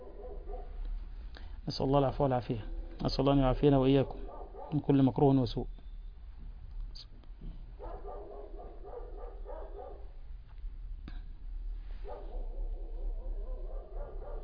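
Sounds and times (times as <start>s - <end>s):
house dog barking and yipping: 0.0s - 0.8s, 4.0s - 4.9s, 7.8s - 10.1s, 12.0s - 14.4s
steady low hum: 0.0s - 14.4s
speech: 1.7s - 5.8s.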